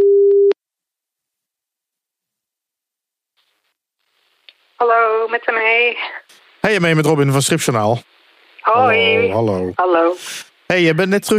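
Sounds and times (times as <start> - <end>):
steady telephone tone while a call is being placed: 0.0 - 0.6
speech: 4.8 - 11.3.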